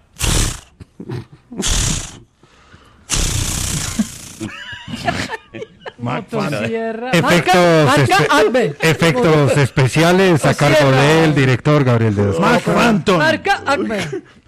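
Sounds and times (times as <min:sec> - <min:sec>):
voice imitating a chainsaw pull-start and revving: 0:00.0 - 0:00.8, 0:01.6 - 0:02.2, 0:03.1 - 0:04.6
speech: 0:01.5 - 0:01.9, 0:06.0 - 0:14.4
laughter: 0:03.9 - 0:10.9.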